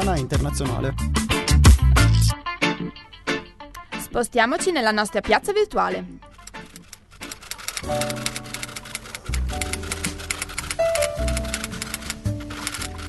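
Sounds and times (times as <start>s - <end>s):
speech: 0.0s - 1.4s, 4.1s - 6.3s, 7.8s - 8.4s
sustained musical backing with shifting chords: 0.0s - 13.0s
fingers typing on a keyboard: 6.3s - 13.0s.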